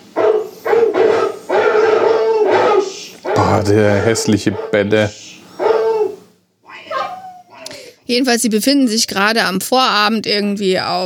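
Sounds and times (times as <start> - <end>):
dogs barking at night: 0.0 - 7.7
speech: 3.5 - 5.3, 8.1 - 11.0.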